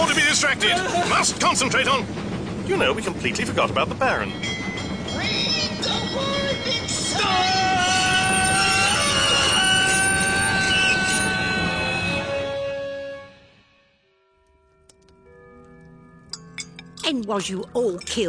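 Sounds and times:
speech: 0.0 - 4.6, 17.1 - 18.2
express train braking with high metallic squealing: 0.0 - 13.8.

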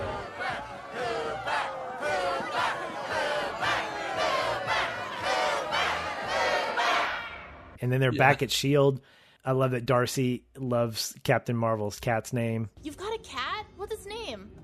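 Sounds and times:
large crowd at an event yelling and chanting: 0.0 - 8.3
speech: 7.8 - 13.4.

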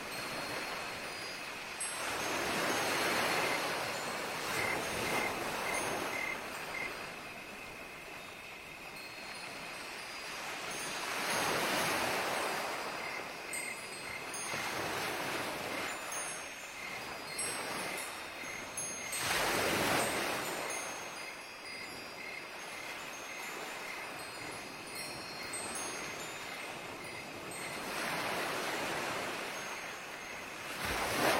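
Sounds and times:
light wind chimes ringing: 0.0 - 31.3
waves washing in and receding at night: 0.0 - 31.3.

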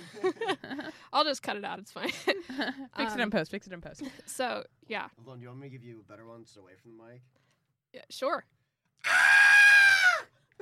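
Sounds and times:
speech: 1.2 - 9.2
sustained piercing blood-curdling human scream: 9.0 - 10.6.

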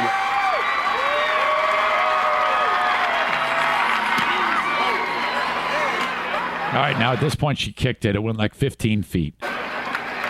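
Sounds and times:
football stadium crowd roaring and cheering: 0.0 - 7.4, 9.4 - 10.2
speech: 6.8 - 9.5.

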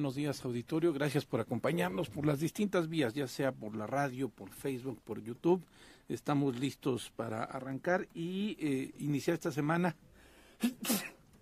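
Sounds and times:
speech: 0.0 - 11.0
person sneezing: 10.6 - 11.3.

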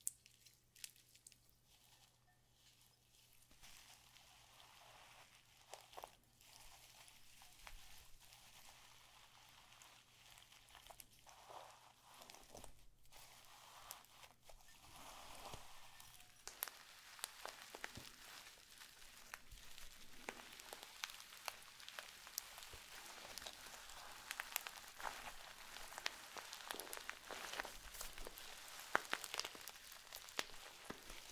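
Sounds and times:
slime being squeezed and pressed: 8.2 - 31.3.

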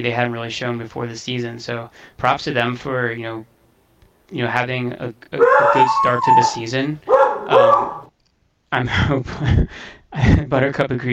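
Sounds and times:
speech: 0.0 - 3.5, 4.3 - 8.0, 8.7 - 11.1
beagle barking and howling: 5.4 - 8.1.

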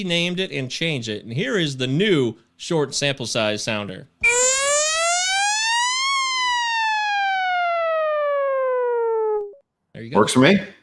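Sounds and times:
speech: 0.0 - 4.4, 10.1 - 10.8
video-game hockey goal siren wailing: 4.2 - 9.6.

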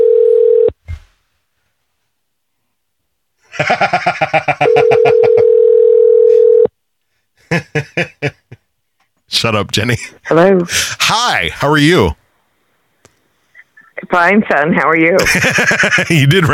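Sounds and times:
telephone dial tone: 0.0 - 0.7, 4.6 - 6.7
laughter: 3.5 - 5.6, 7.4 - 8.6, 15.2 - 16.5
speech: 3.6 - 4.8, 9.4 - 12.2, 14.1 - 16.5.

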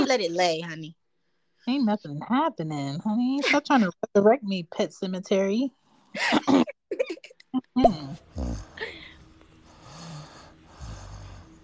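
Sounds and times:
speech: 0.1 - 1.0, 1.6 - 9.0
man snoring: 8.2 - 11.6.

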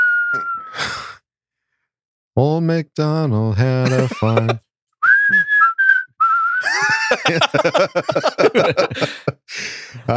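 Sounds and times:
person whistling a tune: 0.0 - 1.1, 5.0 - 6.8
speech: 2.4 - 4.6, 6.6 - 10.1
laughter: 3.7 - 4.6, 6.6 - 10.1.

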